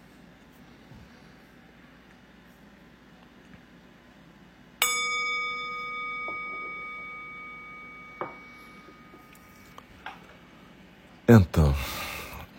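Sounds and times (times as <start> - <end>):
meditation bell struck to end a meditation period: 4.8 - 9.8
speech: 11.3 - 12.0.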